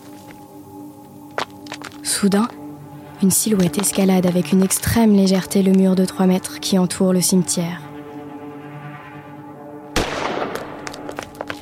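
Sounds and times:
speech: 2.0 - 2.6, 3.2 - 7.9
single gunshot at night in a walled cemetery: 10.0 - 11.1.

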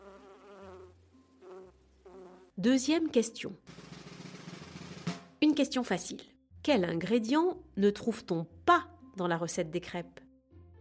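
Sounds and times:
bees buzzing: 0.0 - 2.5
speech: 2.6 - 3.8, 5.6 - 10.2.

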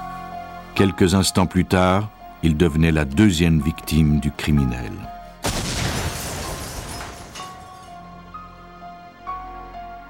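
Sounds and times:
speech: 0.8 - 5.2
parcel bomb explosion: 5.4 - 7.2.

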